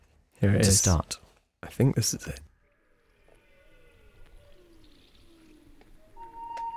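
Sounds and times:
speech: 0.4s - 2.5s
gliding whistled calls and chirps in a rainforest: 3.6s - 6.7s.

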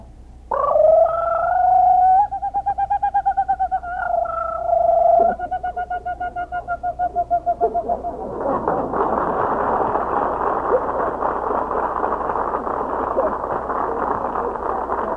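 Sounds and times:
man imitating a kookaburra call: 0.5s - 8.4s
laughter: 5.4s - 15.1s.

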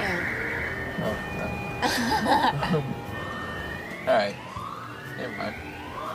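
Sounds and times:
siren wailing: 0.0s - 6.1s
speech: 1.0s - 3.1s, 4.0s - 4.5s, 5.2s - 5.8s
people laughing: 1.8s - 2.9s.

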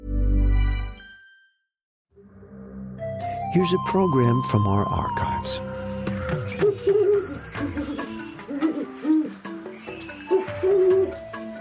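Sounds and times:
speech: 3.5s - 5.7s
great horned owl hooting: 5.6s - 11.5s.

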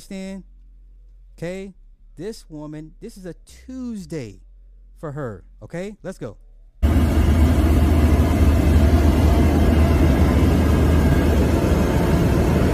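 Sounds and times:
speech: 0.1s - 0.5s, 1.4s - 6.4s
airplane engines roaring in flight: 6.8s - 12.7s.

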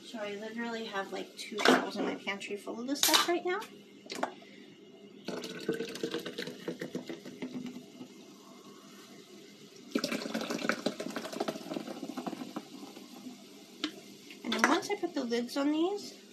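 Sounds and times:
speech: 0.1s - 4.4s, 15.2s - 16.2s
tap water running: 5.3s - 8.1s, 9.8s - 15.0s.

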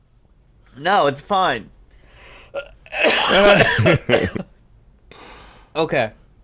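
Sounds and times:
speech: 0.8s - 1.8s, 2.5s - 4.5s, 5.8s - 6.2s
person coughing and sputtering after swallowing water wrong: 2.6s - 4.5s.

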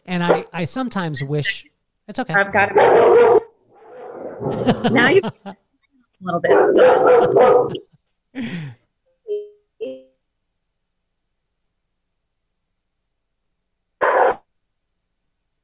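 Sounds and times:
speech: 0.1s - 3.4s, 4.4s - 5.6s, 6.2s - 8.8s
dog barking with short higher yips: 2.7s - 3.6s, 6.5s - 7.8s, 14.0s - 14.4s
laughter: 4.5s - 5.6s, 7.0s - 7.8s.

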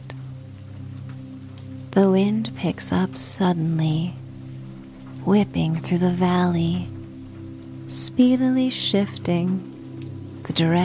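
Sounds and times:
rain pattering on a hard surface: 0.0s - 10.8s
speech: 1.9s - 4.2s, 5.2s - 7.0s, 7.9s - 9.7s, 10.5s - 10.8s.

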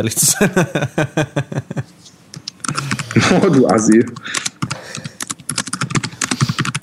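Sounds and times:
speech: 0.0s - 1.6s, 3.2s - 4.4s
laughter: 0.2s - 1.9s, 2.8s - 3.8s
rapid typing on a computer keyboard: 2.4s - 3.2s, 3.8s - 6.8s.

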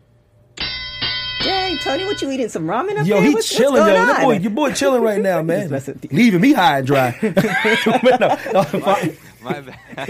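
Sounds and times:
bell ding: 0.6s - 2.6s
speech: 1.8s - 10.0s
laughter: 6.9s - 10.0s.

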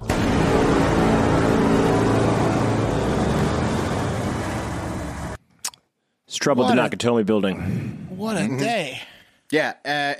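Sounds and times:
car engine roaring: 0.0s - 5.4s
speech: 6.4s - 10.1s.

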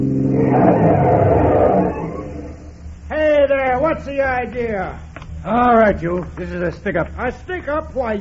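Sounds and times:
truck engine pulling a trailer roaring on a road: 0.2s - 2.9s
speech: 4.2s - 8.1s.

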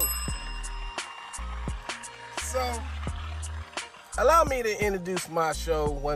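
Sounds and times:
small bell ringing: 0.0s - 2.8s
speech: 2.5s - 3.0s, 4.2s - 6.1s.

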